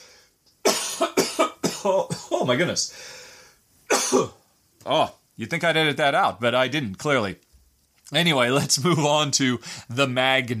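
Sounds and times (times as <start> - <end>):
person coughing: 0.7 - 2.6, 3.9 - 4.4
speech: 1.8 - 3.2, 4.1 - 7.4, 8.1 - 10.5.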